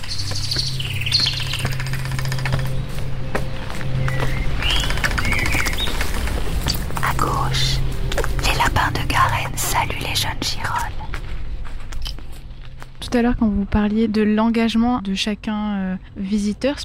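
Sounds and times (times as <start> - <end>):
blackbirds singing in a forest: 0.0 - 12.6
speech: 13.2 - 16.8.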